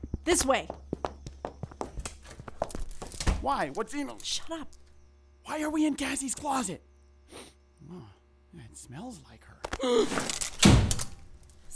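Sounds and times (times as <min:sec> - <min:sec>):
quick soft footsteps: 0:00.0 - 0:04.1
speech: 0:00.2 - 0:00.8, 0:03.4 - 0:04.8, 0:05.5 - 0:10.6.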